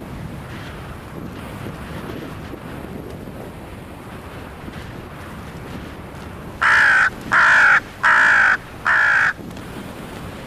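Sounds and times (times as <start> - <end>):
crows cawing alarm calls while mobbing an eagle: 6.6 - 9.4.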